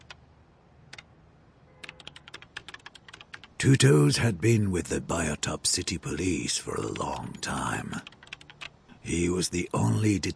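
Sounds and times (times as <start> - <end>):
slow key taps on a computer keyboard: 1.9 - 3.5
speech: 3.6 - 8.2, 9.0 - 10.3.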